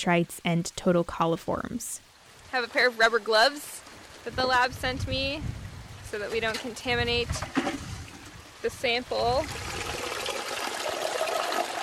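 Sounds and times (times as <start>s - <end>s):
speech: 0.0s - 7.9s, 8.6s - 9.8s
water gushing into buckets being filled: 7.1s - 11.8s.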